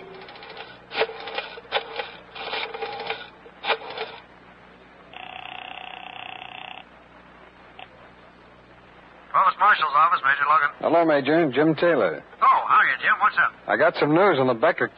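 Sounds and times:
telephone being dialed with dry clicks: 0.0 - 4.2
steady electronic telephone ringing tone: 5.1 - 6.9
speech: 9.7 - 12.3, 13.2 - 14.9.

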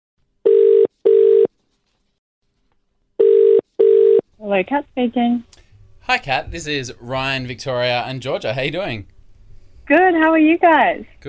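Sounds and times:
telephone ringback tone purring in the earpiece: 0.5 - 1.5, 3.2 - 4.2
speech: 4.5 - 5.5, 6.1 - 9.1, 9.9 - 11.2.

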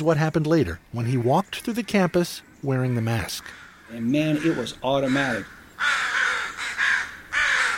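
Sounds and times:
speech: 0.0 - 6.1
crows cawing and scolding a person in a caveman mask: 1.6 - 7.7.

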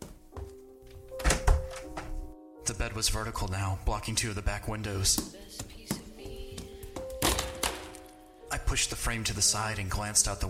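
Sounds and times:
bedroom door opening: 0.8 - 2.3, 7.0 - 8.2
speech: 2.7 - 5.7, 8.7 - 10.4.

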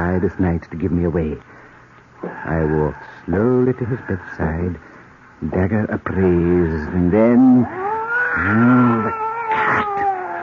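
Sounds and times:
speech: 0.1 - 1.6, 2.4 - 7.8, 8.4 - 9.9
fat sleek cat yowling at night: 7.6 - 10.4.

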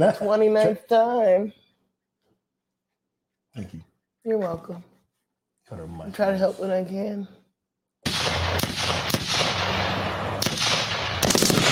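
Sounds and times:
speech: 0.0 - 1.6, 3.6 - 4.9, 5.7 - 7.4
gunfire sound effect shots: 8.0 - 11.7.

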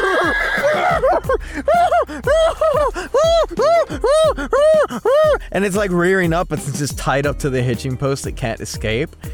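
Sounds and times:
laughter: 0.0 - 5.4
person imitating a horse neighing: 0.0 - 5.4
speech: 5.6 - 9.3.

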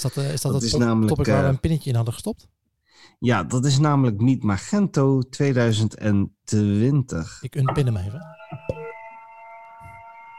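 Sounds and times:
speech: 0.0 - 8.4
high-pitched electronic alarm tone: 7.7 - 10.3.

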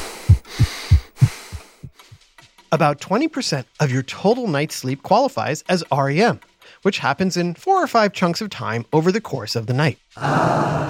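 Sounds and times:
regular heartbeat: 0.0 - 2.2
speech: 2.7 - 10.8.

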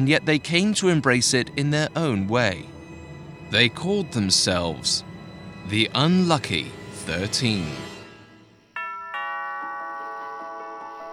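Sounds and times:
speech: 0.0 - 2.7, 3.5 - 7.9
doorbell chiming two ding-dong tones: 8.8 - 11.1.

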